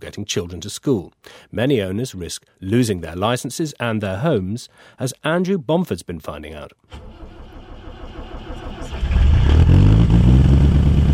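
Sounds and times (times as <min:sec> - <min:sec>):
speech: 0:00.1 - 0:07.2
old black cab taxi diesel engine in a narrowboat cranking: 0:06.9 - 0:11.1.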